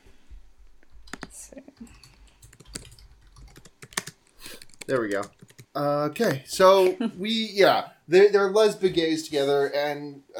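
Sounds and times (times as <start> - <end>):
typing on a computer keyboard: 1.0 - 5.8
speech: 4.9 - 10.3.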